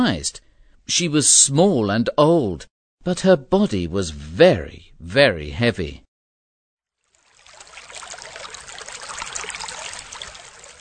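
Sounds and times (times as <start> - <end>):
speech: 0.0 - 6.0
river water flowing: 7.0 - 10.7.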